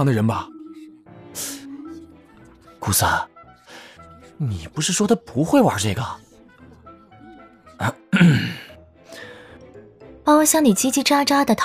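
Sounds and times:
speech: 0.0 - 0.5, 1.4 - 1.6, 2.9 - 3.3, 4.4 - 6.3, 7.8 - 8.6, 10.3 - 11.6
throat-clearing cough: 8.1 - 8.7.

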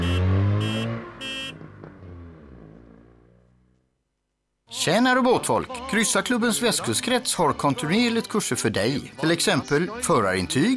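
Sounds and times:
car horn honks: 0.0 - 2.0
car engine rumble driving off: 0.0 - 3.8
speech: 4.8 - 10.7.

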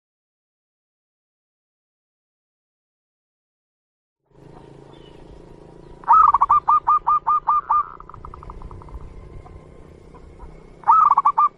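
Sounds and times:
low background hum: 4.3 - 11.5
zebra dove singing stuttering notes: 4.3 - 11.5.

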